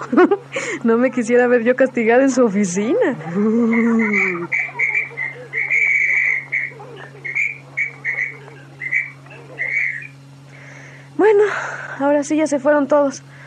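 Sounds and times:
laughter: 0.0 - 1.0, 3.0 - 10.1
speech: 0.0 - 4.7, 11.2 - 13.3
steady low hum: 0.0 - 13.4
whistle blown by a school principal at a school: 3.8 - 10.2.

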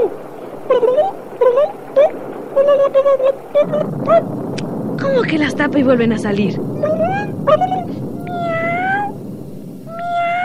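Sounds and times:
low rumbling background: 0.0 - 10.4
speech: 5.3 - 8.5
family of cats meowing in long drawn-out calls: 6.8 - 9.2, 9.9 - 10.4.

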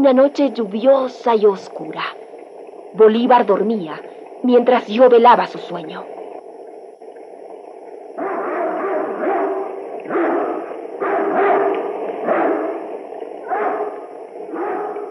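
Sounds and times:
speech: 0.0 - 2.2, 2.9 - 6.2
dogs barking with overlapping yelps and woofs: 8.2 - 15.1.

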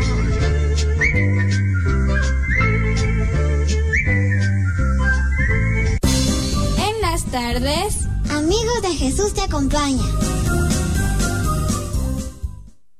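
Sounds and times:
full instrumental accompaniment: 0.0 - 12.9
person whistling a bright melody with rising, sliding notes: 1.0 - 3.1, 3.8 - 6.0
speech: 8.8 - 10.7.

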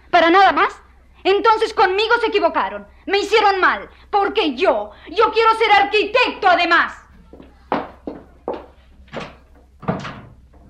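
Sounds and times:
speech: 0.3 - 7.0
wooden door shut firmly with sharp thuds and knocks: 9.1 - 10.6.

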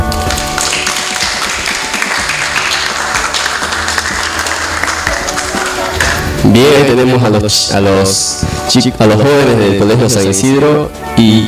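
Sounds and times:
room full of people applauding: 0.0 - 6.4
speech: 6.5 - 11.4.

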